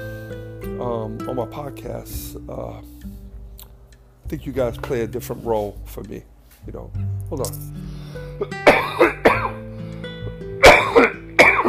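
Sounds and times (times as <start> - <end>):
speech: 0.8 - 3.1, 4.3 - 9.2
harsh coughs from someone with a scratchy throat: 8.4 - 9.6, 10.6 - 11.6
throat clearing: 8.4 - 9.6, 10.6 - 11.6.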